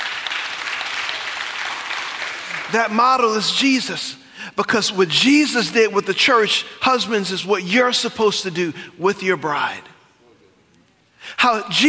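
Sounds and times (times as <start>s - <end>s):
crowd clapping: 0.0s - 3.0s
speech: 2.7s - 9.9s, 11.4s - 11.8s.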